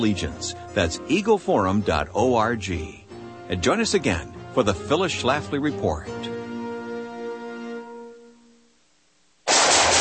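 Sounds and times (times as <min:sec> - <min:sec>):
speech: 0:00.0 - 0:06.3
burst of gunfire in a gear advertisement: 0:09.4 - 0:09.9.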